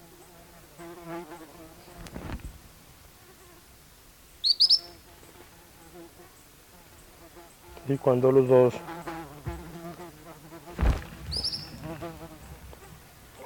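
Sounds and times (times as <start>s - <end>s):
steady insect buzz: 0.0s - 13.4s
tropical kingbirds giving high twittering calls: 4.2s - 13.4s
man speaking softly: 7.8s - 8.9s
speech: 7.9s - 8.9s.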